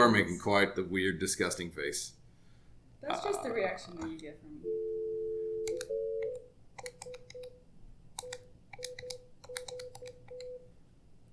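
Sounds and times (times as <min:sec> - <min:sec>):
speech: 0:00.0 - 0:02.2, 0:03.0 - 0:05.0
electronic phone-call tones with steady tone and short clipped beeps: 0:04.6 - 0:06.5.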